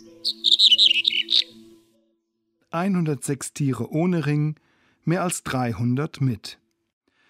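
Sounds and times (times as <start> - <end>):
redpolls, corn buntings, yellowhammers, reed buntings and red-headed buntings chirping: 0.0 - 1.8
speech: 0.2 - 0.5, 2.7 - 6.6.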